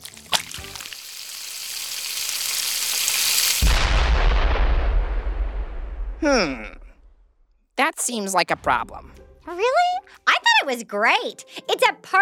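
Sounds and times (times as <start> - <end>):
fizzy pancake batter sizzling on a hot griddle: 0.4 - 3.7
deep rumbling popping of pancake batter: 3.5 - 7.5
speech: 6.2 - 6.8, 7.8 - 9.9, 10.6 - 12.2.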